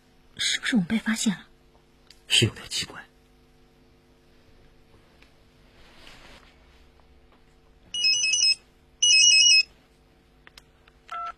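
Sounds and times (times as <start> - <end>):
speech: 0.4 - 1.5, 2.3 - 3.1
mobile phone ringing: 7.9 - 9.7, 11.1 - 11.3.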